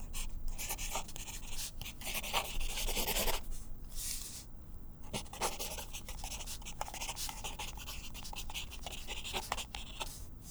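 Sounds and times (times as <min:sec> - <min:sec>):
mechanical pencil writing: 0:00.1 - 0:03.4, 0:05.1 - 0:10.2.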